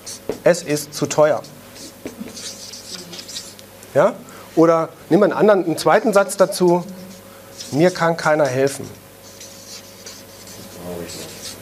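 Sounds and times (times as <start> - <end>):
speech: 0.3 - 1.6, 3.9 - 7.0, 7.7 - 9.0
pen scratching while writing by hand: 1.3 - 3.6, 6.2 - 11.6.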